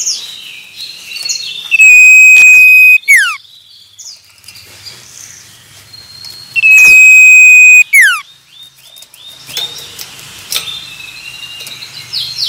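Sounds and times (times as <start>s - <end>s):
male common iora song whistles: 1.7s - 3.3s, 6.6s - 8.2s.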